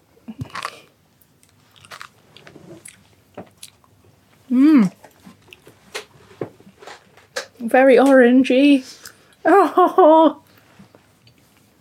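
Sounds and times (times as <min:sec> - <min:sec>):
crunching and chewing a cola-flavoured sweet: 0:00.3 - 0:04.0
speech: 0:04.5 - 0:05.0, 0:07.7 - 0:10.4.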